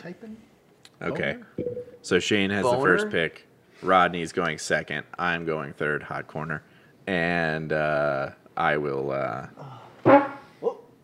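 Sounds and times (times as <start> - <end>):
speech: 0.0 - 10.2
loud brassy fart: 10.0 - 10.5.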